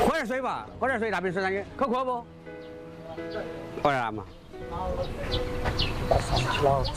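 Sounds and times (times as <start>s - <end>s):
speech: 0.2s - 2.4s, 3.2s - 6.9s
ducks quacking at a market: 5.3s - 6.9s.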